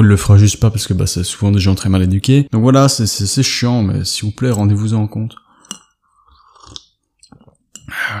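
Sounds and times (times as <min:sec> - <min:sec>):
speech: 0:00.0 - 0:05.4
person sipping a beverage: 0:05.4 - 0:08.1
beverage slurp or gulp: 0:06.3 - 0:07.0.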